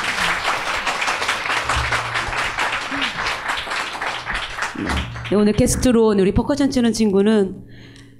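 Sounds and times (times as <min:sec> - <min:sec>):
audience applause: 0:00.0 - 0:05.5
speech: 0:04.8 - 0:08.0.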